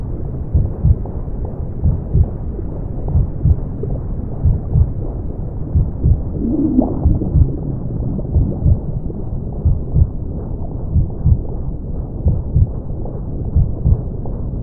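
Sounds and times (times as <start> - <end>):
heartbeats in womb sounds: 0.5 - 1.2, 1.8 - 2.5, 3.1 - 3.7, 4.3 - 14.6
brown noise: 6.0 - 10.5.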